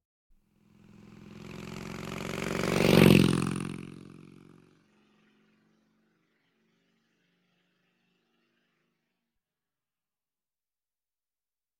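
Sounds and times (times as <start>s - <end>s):
motorcycle passing by: 0.5s - 9.3s.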